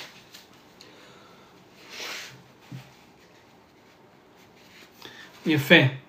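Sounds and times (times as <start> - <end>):
nose blowing into a tissue: 1.8 - 2.4
speech: 5.4 - 6.0.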